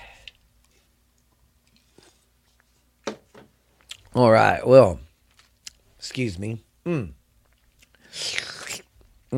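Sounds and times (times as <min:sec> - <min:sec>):
speech: 0:04.2 - 0:05.0, 0:06.0 - 0:07.2
person slurping a fizzy soda drink: 0:08.1 - 0:08.9.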